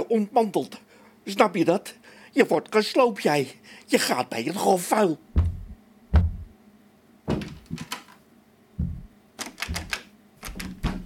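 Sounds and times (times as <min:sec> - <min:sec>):
speech: 0:00.1 - 0:05.3
door thudding shut: 0:07.3 - 0:07.9, 0:08.8 - 0:11.0
metallic clicks and rattles of a lock being worked: 0:07.4 - 0:08.2, 0:09.4 - 0:11.0.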